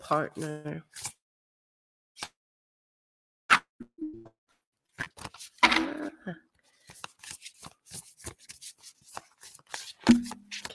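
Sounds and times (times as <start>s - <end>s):
speech: 0.1s - 1.2s, 5.8s - 6.4s
deck of cards being shuffled: 5.0s - 5.9s, 6.7s - 10.7s.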